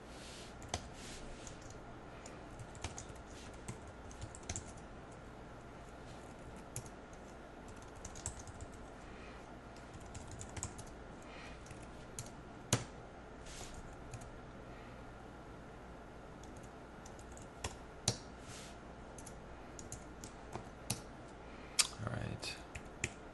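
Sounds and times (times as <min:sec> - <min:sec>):
low steady hum: 0:00.0 - 0:23.3
keys clacking on a computer keyboard typing entries into a form: 0:00.6 - 0:05.2, 0:06.2 - 0:08.9, 0:09.8 - 0:11.0, 0:11.6 - 0:12.9, 0:16.4 - 0:18.2, 0:19.1 - 0:21.0, 0:22.7 - 0:23.2.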